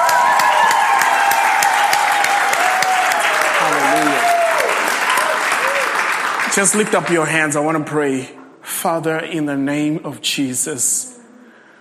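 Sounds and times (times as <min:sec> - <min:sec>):
audience applauding with hand claps: 0:00.0 - 0:07.8
speech: 0:06.6 - 0:11.1.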